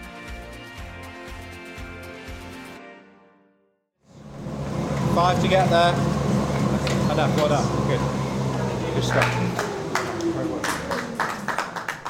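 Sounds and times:
treadmill whirring with a steady low motor hum: 4.1s - 12.0s
speech: 5.2s - 6.2s, 7.2s - 8.2s, 9.0s - 9.7s.

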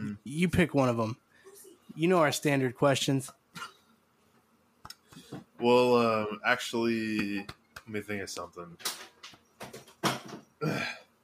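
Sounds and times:
speech: 0.2s - 1.2s, 2.0s - 3.7s, 5.6s - 9.1s
person clearing throat in short rough rasping bursts: 10.6s - 11.1s.

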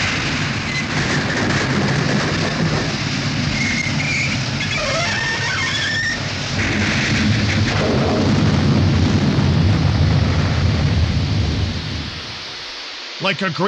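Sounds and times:
steam train derailing and crashing after its engine struck a tight curve: 0.0s - 13.5s
scraping metallic screeches of derailing steam train: 3.5s - 6.3s
speech: 13.2s - 13.6s.

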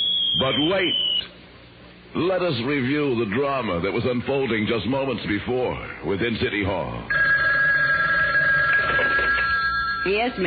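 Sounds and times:
speech: 0.4s - 1.3s, 2.1s - 7.2s, 10.0s - 10.4s
telephone ringing with electronic tone: 7.1s - 10.4s.

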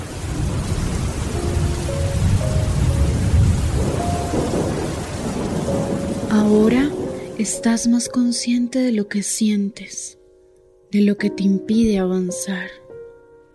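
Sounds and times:
low thunder rumbling far off: 0.0s - 8.4s
steady rain downpour: 0.0s - 8.4s
speech: 6.4s - 10.2s, 10.9s - 12.8s.

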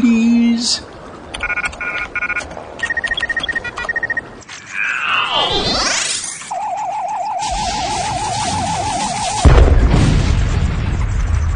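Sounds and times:
speech: 0.6s - 0.9s
electronic beeps: 1.4s - 5.0s, 6.5s - 9.5s
warbling whine: 4.5s - 9.8s
explosion at the aft of a freighter: 7.4s - 11.5s.

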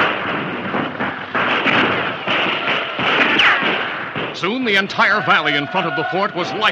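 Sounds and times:
rapid fire from repeating rifles at a fort during a night attack: 0.0s - 5.6s
speech: 4.4s - 6.6s.

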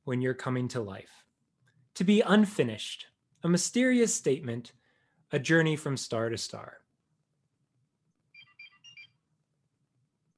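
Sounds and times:
speech: 0.1s - 1.3s, 2.0s - 6.8s
gadget-style cartoon communicator ringtone beeps: 8.3s - 9.2s.

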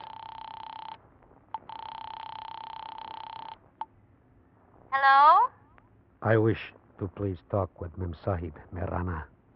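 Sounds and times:
buzzing telephone line tone in a drugstore phone booth: 0.0s - 3.9s
speech: 6.2s - 9.3s.

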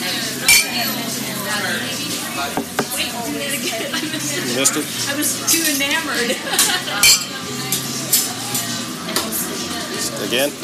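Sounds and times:
low murmur of voices: 0.0s - 10.6s
speech: 4.6s - 7.3s, 10.2s - 10.6s
glasses clinking together in a toast: 7.0s - 7.4s.

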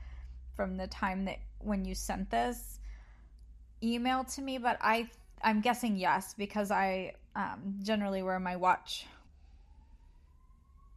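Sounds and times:
speech: 0.6s - 2.8s, 3.8s - 9.2s
distant emergency vehicle siren wailing downtown: 8.9s - 10.9s.

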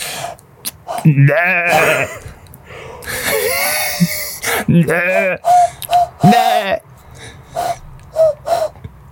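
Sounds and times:
breathy hissing vocal noises: 0.0s - 1.2s, 2.6s - 8.8s
person imitating goat bleats: 1.0s - 2.2s, 3.4s - 5.4s, 6.2s - 6.8s
speech: 1.0s - 2.3s, 4.6s - 6.8s.

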